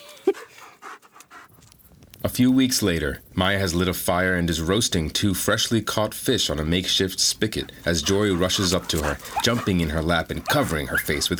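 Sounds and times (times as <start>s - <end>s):
wolf puppy panting rapidly: 0.0s - 1.9s, 6.4s - 11.3s
speech: 2.2s - 11.3s
wolf puppy yelp: 8.0s - 11.3s.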